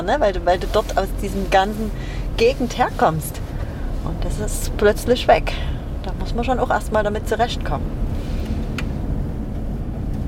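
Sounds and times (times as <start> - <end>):
speech: 0.0 - 3.4, 4.0 - 8.1
car driving up a driveway: 0.0 - 10.2.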